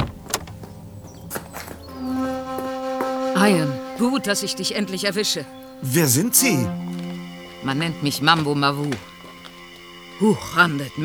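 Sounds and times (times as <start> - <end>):
car driver's door opening with mechanical clicks and clunks: 0.0 - 3.8, 4.4 - 11.0
steady humming tone: 0.0 - 11.0
speech: 3.4 - 7.0, 7.6 - 9.1, 10.2 - 11.0.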